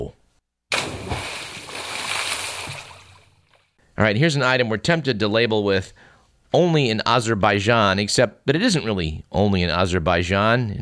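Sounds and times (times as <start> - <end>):
person cannonballing into water: 0.7 - 3.8
speech: 4.0 - 10.8.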